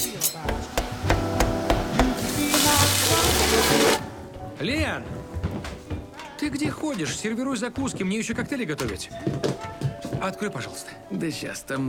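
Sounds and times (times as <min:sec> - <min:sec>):
knife chopping food on a board: 0:00.5 - 0:02.2
food sizzling in a hot pan on a stove: 0:01.8 - 0:04.0
speech: 0:04.6 - 0:05.3, 0:06.4 - 0:11.8.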